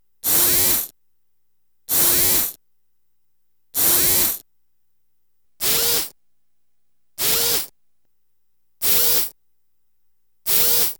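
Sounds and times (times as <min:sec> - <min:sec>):
small servo drill: 0:00.2 - 0:00.9, 0:01.9 - 0:02.5, 0:03.8 - 0:04.4, 0:05.6 - 0:06.1, 0:07.2 - 0:07.7, 0:08.8 - 0:09.3, 0:10.5 - 0:10.9.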